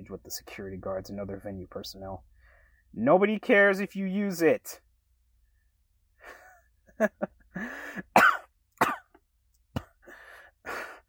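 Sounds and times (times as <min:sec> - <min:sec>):
speech: 0:00.1 - 0:02.3, 0:02.9 - 0:04.8, 0:07.0 - 0:08.1
strained wheezy gasps for breath: 0:07.6 - 0:08.1, 0:10.0 - 0:11.0
person coughing: 0:08.0 - 0:09.2, 0:09.8 - 0:10.0.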